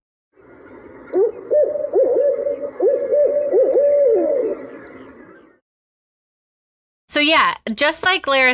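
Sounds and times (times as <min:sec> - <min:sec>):
barred owl hooting call: 0:00.4 - 0:05.6
speech: 0:07.2 - 0:08.5.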